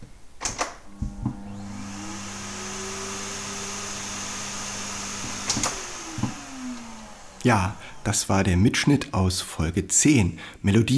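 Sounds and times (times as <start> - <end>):
vacuum cleaner switching off with clunks: 0.4 - 8.3
vacuum cleaner motor whirring up in pitch: 0.8 - 9.1
speech: 7.4 - 10.9.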